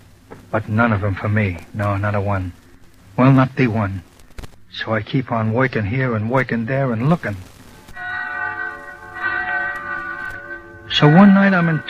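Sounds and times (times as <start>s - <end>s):
speech: 0.5s - 2.6s, 3.2s - 4.1s, 4.7s - 7.5s, 11.0s - 11.8s
bells ringing in town at New Year: 8.0s - 11.8s.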